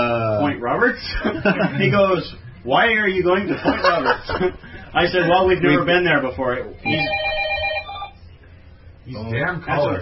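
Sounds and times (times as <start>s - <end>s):
speech: 0.6s - 7.3s, 9.1s - 10.0s
laughter: 1.0s - 2.2s, 3.5s - 5.5s
telephone ringing: 6.8s - 8.2s.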